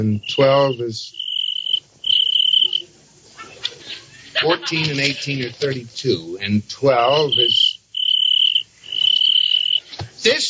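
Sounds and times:
speech: 0:00.0 - 0:01.2, 0:04.4 - 0:07.6, 0:10.2 - 0:10.4
cricket chirping: 0:00.0 - 0:03.0, 0:06.8 - 0:10.4
laughter: 0:02.7 - 0:06.3.

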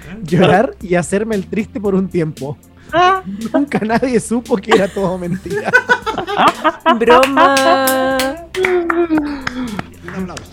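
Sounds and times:
speech: 0:00.1 - 0:10.5
laughter: 0:04.7 - 0:10.4
hands clapping: 0:06.4 - 0:10.5.

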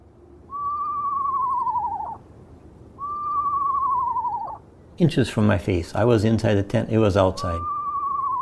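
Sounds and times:
Eastern screech owl call: 0:00.5 - 0:02.2, 0:03.0 - 0:04.6, 0:07.5 - 0:08.4
speech: 0:05.0 - 0:07.7.

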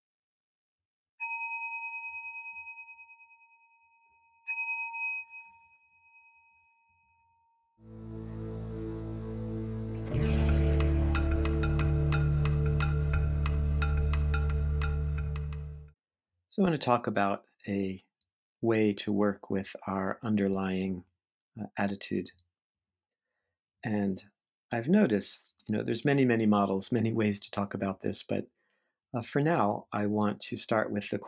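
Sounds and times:
meditation bell ringing: 0:01.2 - 0:07.7
loud steady low droning noise: 0:07.8 - 0:15.9
speech: 0:16.6 - 0:22.4, 0:23.8 - 0:31.2.

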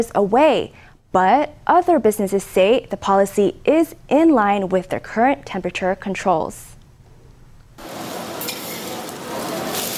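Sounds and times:
speech: 0:00.0 - 0:06.7
food sizzling on a hot griddle in a restaurant: 0:07.8 - 0:09.9.

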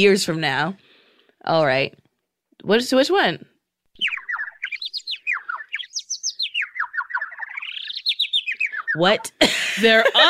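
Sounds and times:
speech: 0:00.0 - 0:02.0, 0:02.6 - 0:04.1, 0:09.0 - 0:10.2
computer-generated birds chirping: 0:03.9 - 0:10.2.

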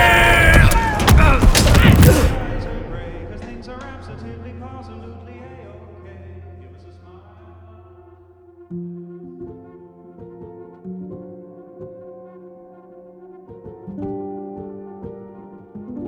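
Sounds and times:
bombs dropping and exploding: 0:00.0 - 0:05.1
low rumble after bomb explosions: 0:00.1 - 0:05.8.

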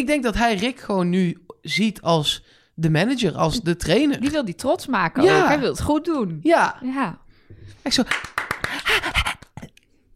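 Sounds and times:
speech: 0:00.0 - 0:07.2, 0:07.8 - 0:09.3
dog panting in quick rhythmic breaths: 0:08.7 - 0:09.6.

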